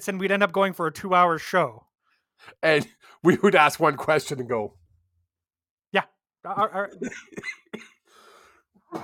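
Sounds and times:
speech: 0.0s - 4.8s, 5.9s - 8.0s
sharp raspy coughs: 6.6s - 9.0s.

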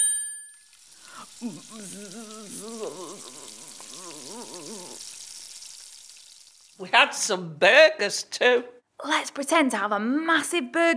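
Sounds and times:
short chime: 0.0s - 0.7s
voices imitating a sausage sizzling on a barbecue: 0.7s - 7.3s
speech: 1.4s - 5.2s, 6.8s - 10.9s.

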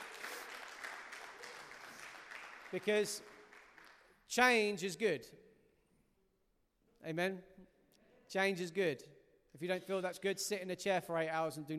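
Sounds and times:
church congregation applause: 0.0s - 4.1s
speech: 2.7s - 3.3s, 4.3s - 5.5s, 7.0s - 11.7s.

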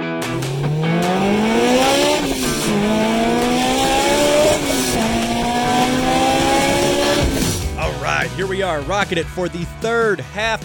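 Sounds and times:
car engine revving through gear changes: 0.2s - 8.1s
tires screeching: 0.3s - 8.0s
speech: 8.6s - 10.6s.

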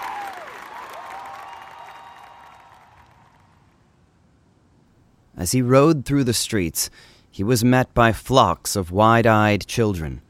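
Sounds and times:
large crowd cheering and clapping: 0.0s - 3.8s
brief rising whistle: 1.2s - 3.1s
speech: 5.4s - 10.2s.

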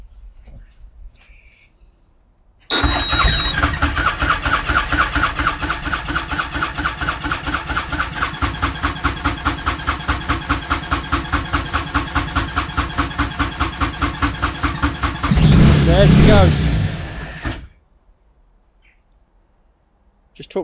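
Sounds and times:
tuk-tuk engine started by hotwiring: 2.7s - 17.7s.

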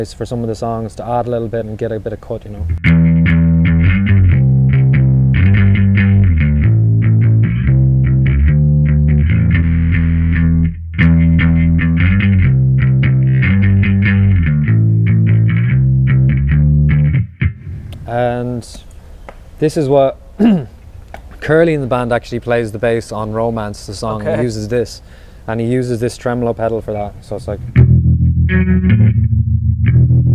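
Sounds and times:
speech: 0.0s - 3.1s, 19.6s - 20.7s, 21.4s - 27.8s, 28.5s - 29.1s
instrument played through an overdrive distortion pedal: 2.7s - 18.5s, 27.6s - 30.3s.

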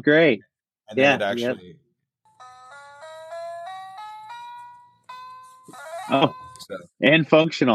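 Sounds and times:
speech: 0.0s - 1.8s, 6.1s - 7.7s
tinny electronic melody from a musical piano tie: 2.3s - 6.9s.

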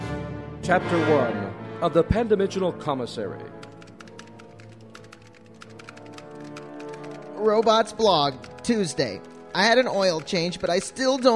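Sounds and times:
speech: 0.7s - 3.6s, 7.4s - 11.3s
keyboard keystroke clicks: 3.6s - 7.8s, 8.4s - 11.3s.

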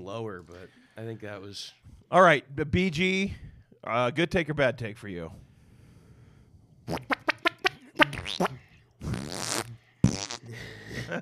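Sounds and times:
speech: 0.0s - 5.4s, 6.9s - 7.2s, 8.3s - 8.6s, 10.5s - 11.1s
wet sputtering fart noises: 6.8s - 10.5s.

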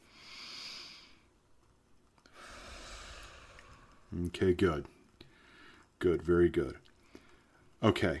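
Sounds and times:
person breathing deeply: 0.0s - 1.3s, 2.2s - 4.3s, 5.2s - 5.9s
speech: 4.1s - 5.0s, 6.0s - 6.9s, 7.8s - 8.1s.

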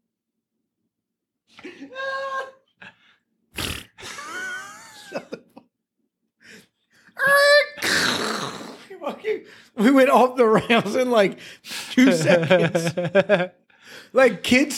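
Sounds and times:
person making sputtering mouth noises imitating a fart: 3.6s - 4.1s, 7.8s - 8.9s
laughter: 4.0s - 5.6s, 8.9s - 13.6s
speech: 9.4s - 14.7s.

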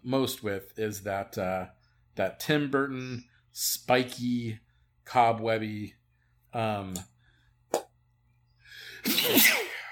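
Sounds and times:
speech: 0.0s - 7.1s
loud sneeze: 9.0s - 9.8s.

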